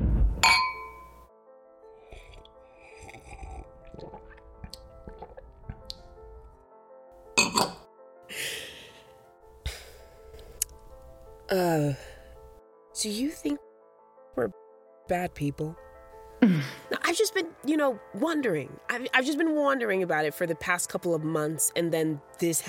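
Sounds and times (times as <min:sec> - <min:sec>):
wine glasses clinking in a toast: 0:00.4 - 0:01.2, 0:07.4 - 0:07.8
quiet sips: 0:02.0 - 0:05.8
speech: 0:11.5 - 0:12.1, 0:13.0 - 0:13.6, 0:14.4 - 0:15.8, 0:16.4 - 0:22.6.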